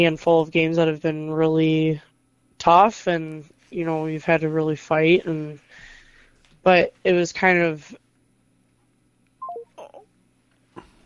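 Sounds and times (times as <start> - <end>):
speech: 0.0 - 5.6, 6.6 - 8.0
quiet hum: 0.0 - 11.0
telephone keypad dialing tones: 9.4 - 9.9.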